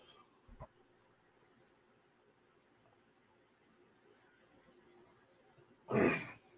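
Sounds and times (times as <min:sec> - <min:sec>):
throat clearing while drinking coffee: 0:05.9 - 0:06.4.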